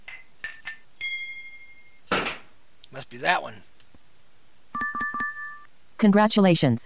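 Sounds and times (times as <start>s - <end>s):
glass pinged with bright ringing tone: 0.1s - 2.1s, 4.8s - 5.7s
speech: 3.0s - 3.8s, 6.0s - 6.8s.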